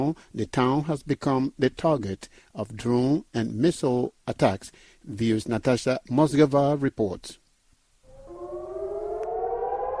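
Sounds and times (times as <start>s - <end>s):
speech: 0.0s - 7.4s
civil defense siren warning of a rocket attack in Eilat, southern Israel: 8.1s - 9.9s.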